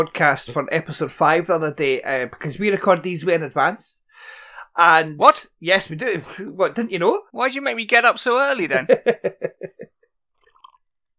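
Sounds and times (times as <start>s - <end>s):
speech: 0.0s - 9.9s
sipping and slurping tea: 10.4s - 10.9s.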